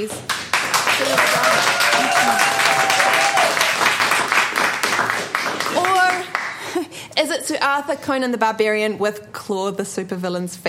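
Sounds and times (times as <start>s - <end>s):
speech: 0.0s - 0.4s, 1.0s - 1.4s, 7.2s - 10.6s
crowd applause: 0.3s - 6.7s
person whooping: 1.0s - 3.8s.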